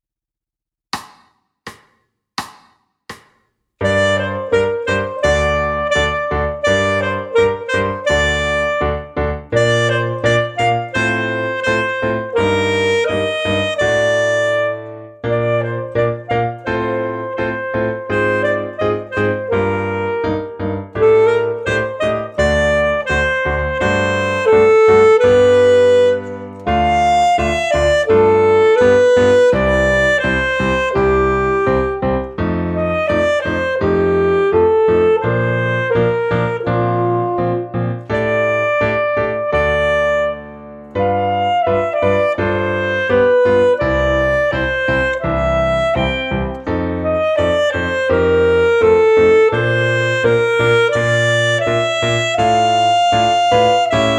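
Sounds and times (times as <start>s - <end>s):
multiple saxophones: 3.8s - 32.1s, 32.8s - 54.1s.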